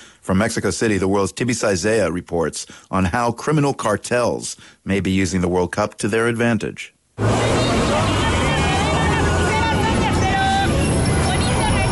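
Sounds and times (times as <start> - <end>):
speech: 0.2 - 8.2
dense crowd hubbub of overlapping voices in Mexico City: 7.2 - 11.9
steady low traffic rumble and engine noise: 7.2 - 11.9.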